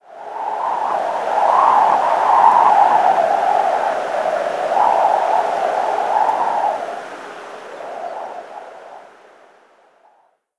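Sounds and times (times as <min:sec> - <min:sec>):
thin wind gust: 0:00.0 - 0:09.6.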